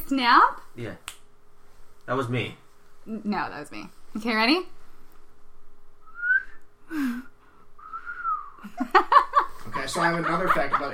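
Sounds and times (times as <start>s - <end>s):
speech: 0.1s - 1.1s, 2.1s - 4.8s, 6.9s - 7.3s, 9.7s - 10.9s
person whistling: 6.0s - 6.6s, 7.8s - 8.6s
laughter: 8.6s - 10.9s.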